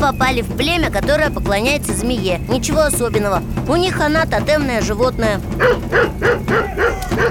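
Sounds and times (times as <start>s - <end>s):
speech: 0.1s - 7.2s
dog barking: 5.6s - 7.2s.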